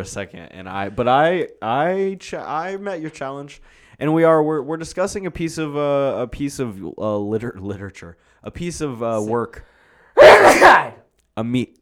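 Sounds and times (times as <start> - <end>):
speech: 0.0 - 9.7, 10.3 - 11.7
loud sneeze: 10.2 - 11.0.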